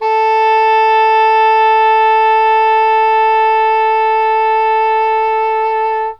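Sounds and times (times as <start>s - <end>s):
English horn playing A3: 0.0s - 6.1s.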